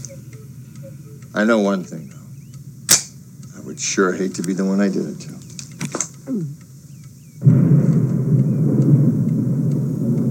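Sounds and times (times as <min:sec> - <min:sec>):
speech: 0:01.3 - 0:02.2, 0:03.8 - 0:05.4, 0:06.3 - 0:06.6
distant thunder rumbling: 0:07.4 - 0:10.2.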